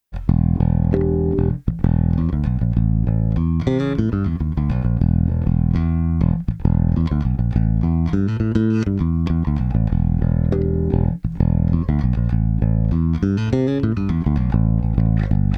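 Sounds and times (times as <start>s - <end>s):
bass through DI and mic blend with fast compression: 0.0s - 15.5s.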